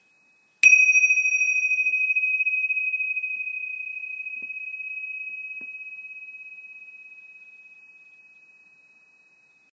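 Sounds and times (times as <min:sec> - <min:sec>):
7.5 cm cymbals with auspicious signs: 0:00.0 - 0:09.7.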